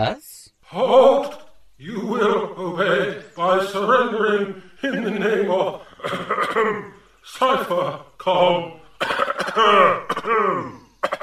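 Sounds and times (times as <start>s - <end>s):
speech: 0.0s - 8.8s, 9.6s - 11.2s
laughter: 1.9s - 8.8s
harsh throaty coughs: 5.8s - 7.1s, 8.9s - 11.2s.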